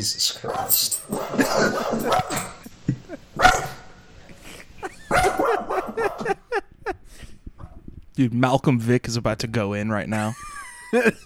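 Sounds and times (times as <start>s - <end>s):
speech: 0.0s - 2.6s, 8.2s - 11.2s
dog barking with yips and whines: 5.1s - 6.3s.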